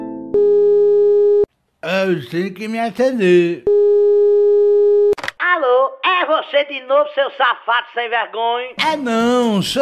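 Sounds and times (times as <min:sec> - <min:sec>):
telephone busy tone after the caller hung up: 0:00.3 - 0:01.5, 0:03.7 - 0:05.1
speech: 0:01.9 - 0:03.7, 0:06.4 - 0:09.8.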